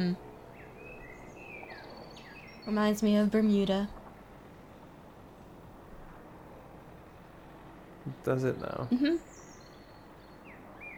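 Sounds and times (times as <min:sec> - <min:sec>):
speech: 0:00.0 - 0:00.3, 0:02.6 - 0:04.0, 0:08.1 - 0:09.5
faint birds chirping outdoors with thin high whistling calls: 0:00.0 - 0:04.0, 0:08.0 - 0:10.9
steady low ambience: 0:00.0 - 0:10.9.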